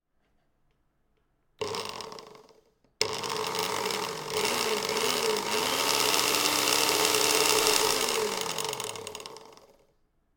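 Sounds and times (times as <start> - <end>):
chainsaw: 1.6 - 9.8.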